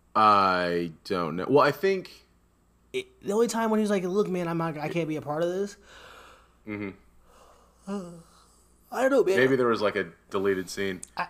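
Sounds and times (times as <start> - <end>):
faint hiss: 0.0 - 11.2
speech: 0.2 - 2.2, 2.9 - 7.0, 7.9 - 8.3, 8.9 - 11.2
person yawning with a short groaning exhale: 7.8 - 8.5.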